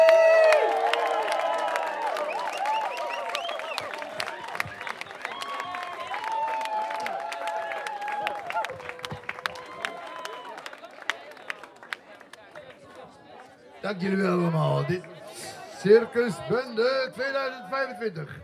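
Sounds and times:
audience cheering and whooping at the end of a circus show in a park: 0.0 - 11.0
audience clapping at the end of a circus show in a park: 0.0 - 13.6
speech: 13.9 - 15.1, 15.8 - 18.4.

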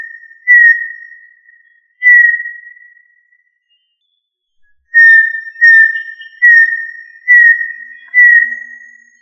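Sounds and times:
tinamou giving pure steady whistled notes: 2.0 - 2.8, 4.9 - 9.2.

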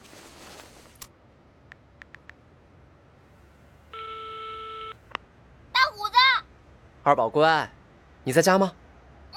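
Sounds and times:
telephone ringing tone on an outgoing call: 3.9 - 5.0
speech: 7.1 - 8.8.

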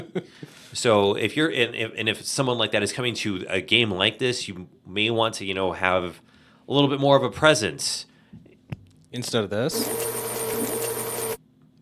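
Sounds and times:
speech: 0.1 - 8.1, 9.1 - 10.2
cricket sound effect resembling mechanical whirring and hum: 9.7 - 11.4.

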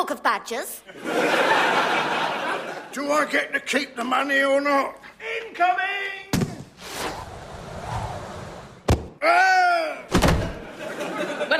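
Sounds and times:
speech: 0.0 - 2.0, 2.9 - 5.9, 9.2 - 9.6
laughter: 0.9 - 3.2, 10.5 - 11.5
cannon shot rushing whoosh: 6.8 - 8.9.

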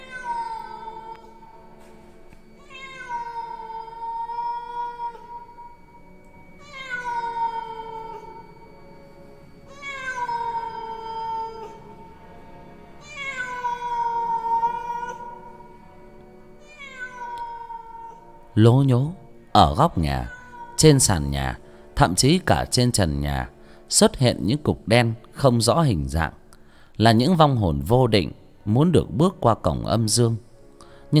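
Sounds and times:
stray cat yowling eerily: 0.0 - 1.6, 2.4 - 8.7, 9.7 - 12.3, 13.0 - 15.8, 16.6 - 18.4, 20.0 - 21.3
speech: 18.6 - 26.4, 27.0 - 30.5.

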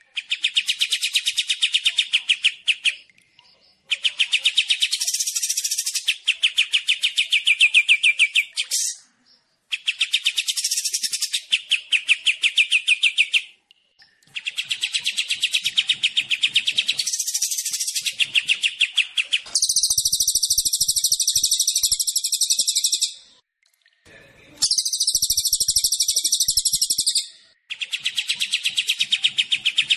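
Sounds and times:
Kapas tembak and Cililin bird song of quick repeated high chirps: 0.0 - 23.4, 24.6 - 29.9.

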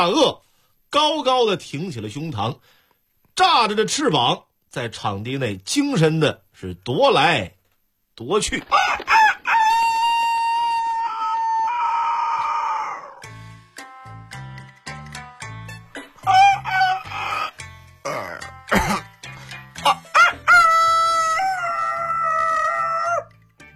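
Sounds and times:
speech: 0.0 - 2.8, 3.4 - 7.6, 8.2 - 9.3
human voice imitating a rooster crowing and clucking: 8.7 - 13.3, 16.2 - 18.5, 19.8 - 23.3.

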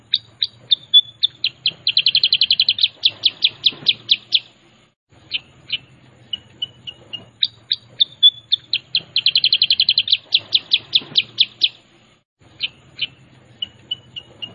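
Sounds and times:
Sooty-headed bulbul song of high chirps and bright repeated notes: 0.0 - 14.5.

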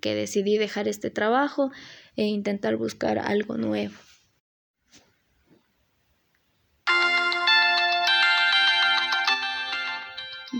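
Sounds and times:
speech: 0.0 - 4.1
electronic phone ringtone for an incoming call: 6.9 - 10.5.

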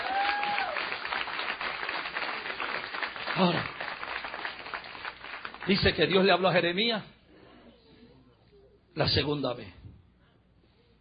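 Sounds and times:
congregation applauding during a church sermon: 0.0 - 6.5
speech: 3.4 - 3.8, 5.6 - 7.1, 9.0 - 9.8.

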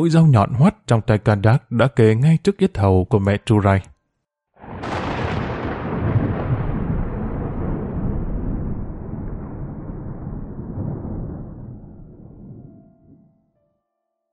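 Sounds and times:
speech: 0.0 - 3.9
thunder rumbling: 4.6 - 13.4.

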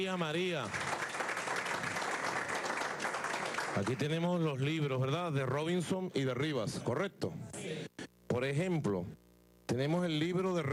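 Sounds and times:
speech: 0.0 - 0.9, 3.8 - 7.8, 8.4 - 10.7
audience applause for a speaker at an adult education gathering: 0.0 - 4.2.

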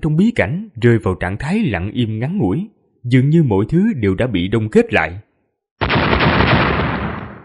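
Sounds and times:
speech: 0.0 - 5.2
huge explosion in the sky: 5.8 - 7.4.

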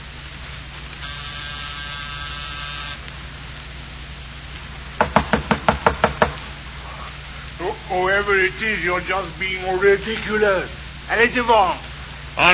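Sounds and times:
buzzing doorbell: 1.0 - 3.0
sharp knocks on a door: 5.0 - 6.4
speech: 7.9 - 11.8, 12.4 - 12.5.

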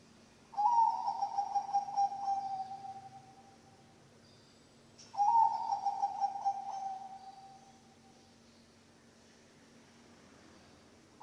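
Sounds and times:
Bangkok-type zebra dove cooing song: 0.5 - 3.6, 5.1 - 8.1.

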